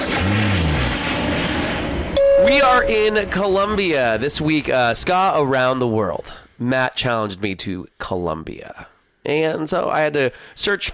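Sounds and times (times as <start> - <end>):
airplane engine drone: 0.4 - 5.5
speech: 2.5 - 10.9.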